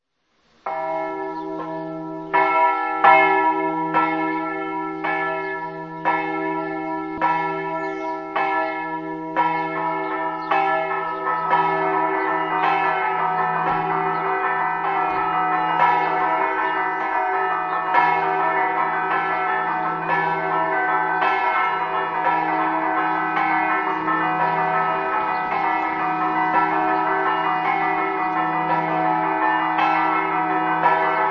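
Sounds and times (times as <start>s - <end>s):
bells ringing: 0.7s - 31.3s.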